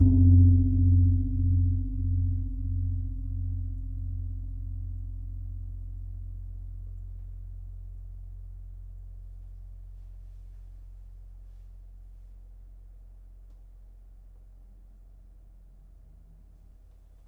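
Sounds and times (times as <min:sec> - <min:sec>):
gamelan gong agenga: 0:00.0 - 0:05.2.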